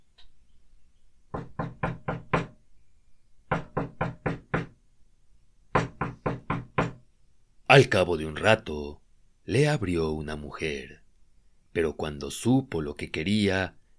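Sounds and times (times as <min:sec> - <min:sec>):
firm knocks on a wooden farmhouse door: 0:01.3 - 0:02.6, 0:03.5 - 0:04.8, 0:05.7 - 0:07.0
speech: 0:07.7 - 0:11.0, 0:11.7 - 0:13.8.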